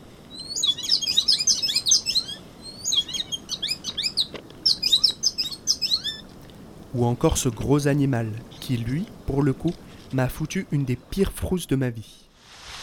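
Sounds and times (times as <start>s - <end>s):
soft outdoor hum: 0.0s - 12.4s
bird singing on the Presqu'île de la Caravelle: 0.3s - 6.3s
speech: 7.0s - 12.2s.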